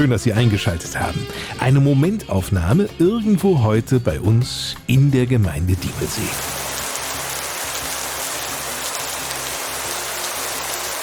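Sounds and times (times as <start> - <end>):
speech: 0.0 - 6.6
steady rain pattering on surfaces: 5.8 - 11.0.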